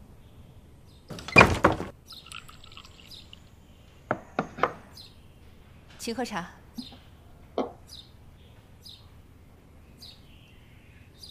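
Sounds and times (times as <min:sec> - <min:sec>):
door pulled shut with a rumbling slide: 0:01.1 - 0:01.9
speech: 0:06.0 - 0:06.6.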